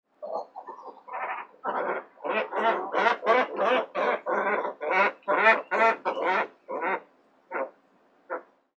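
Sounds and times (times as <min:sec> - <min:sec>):
kawau cormorant: 0:00.2 - 0:08.6.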